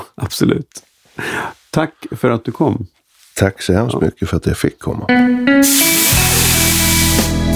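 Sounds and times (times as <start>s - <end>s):
speech: 0.3s - 7.2s
steam hissing as water hits a hot sauna stove: 5.6s - 7.4s.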